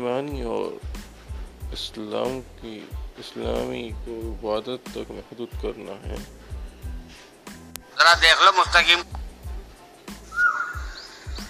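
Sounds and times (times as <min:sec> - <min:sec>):
speech: 0:00.2 - 0:01.0, 0:01.7 - 0:06.5, 0:08.0 - 0:09.2
Asian koel calling in the evening: 0:10.3 - 0:11.4.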